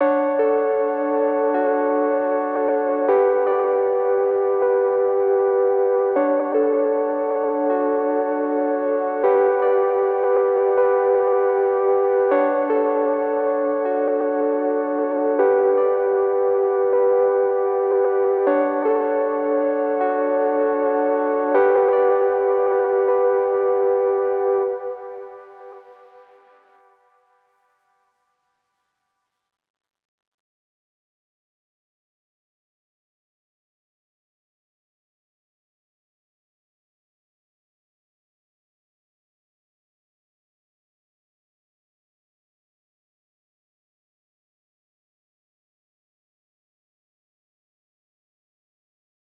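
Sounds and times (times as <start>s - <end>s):
78 BPM D major synth melody loop: 0.1s - 26.2s.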